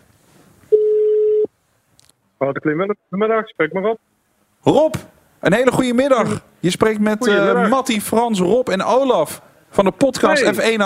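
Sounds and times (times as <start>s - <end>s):
ringback tone on an outgoing phone call: 0.7s - 1.5s
speech: 2.4s - 10.8s.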